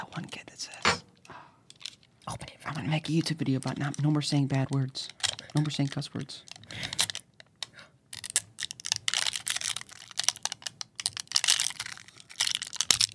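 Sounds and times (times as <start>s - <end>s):
speech: 2.3s - 6.5s
coffee packet wrapper peeling away from its foil layer: 3.2s - 7.3s, 8.1s - 13.1s.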